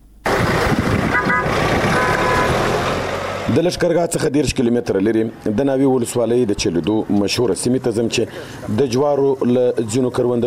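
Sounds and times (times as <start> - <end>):
road traffic in a district of Helmand, Afghanistan: 0.0 - 10.4
car horn honking: 1.1 - 2.8
speech: 3.5 - 10.4.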